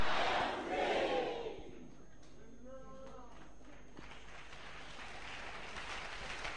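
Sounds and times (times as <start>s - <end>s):
crowd of people shouting together: 0.0s - 1.7s
broad wash of crowd noise: 0.0s - 1.9s.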